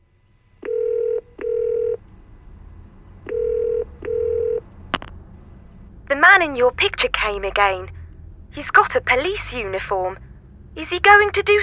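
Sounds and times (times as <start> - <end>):
phone ringing with electronic tone: 0.6 - 2.0, 3.2 - 4.7
speech: 6.4 - 11.6.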